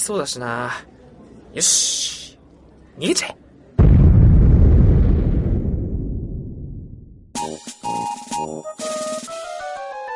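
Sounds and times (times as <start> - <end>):
speech: 0.0 - 2.3, 3.0 - 3.4
bomb explosion: 3.8 - 7.3.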